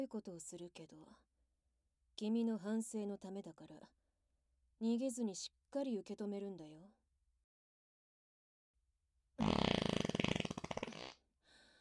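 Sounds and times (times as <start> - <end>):
speech: 0.0 - 1.3, 2.2 - 4.0, 4.8 - 7.0, 9.4 - 9.6
long rasping fart: 9.4 - 11.2.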